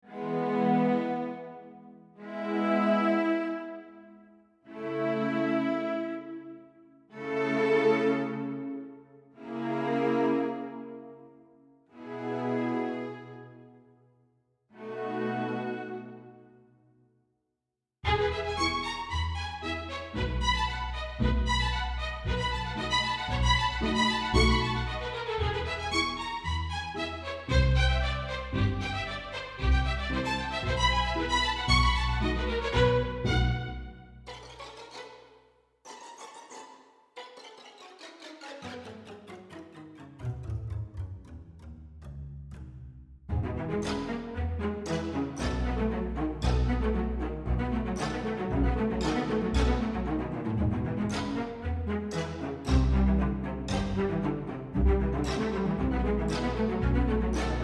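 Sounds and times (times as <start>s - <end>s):
strings playing spiccato detache col legno: 0.1s - 4.0s, 4.7s - 6.4s, 7.1s - 11.2s, 12.0s - 13.8s, 14.8s - 16.4s, 18.0s - 57.6s.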